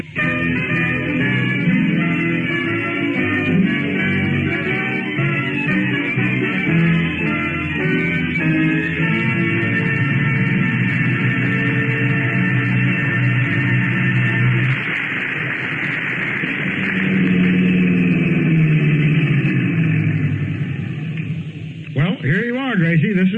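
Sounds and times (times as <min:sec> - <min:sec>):
car engine idling after a drive: 0:00.0 - 0:22.2.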